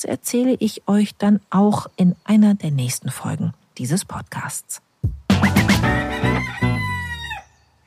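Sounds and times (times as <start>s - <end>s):
speech: 0.0s - 6.6s
rooster crowing: 5.8s - 7.8s.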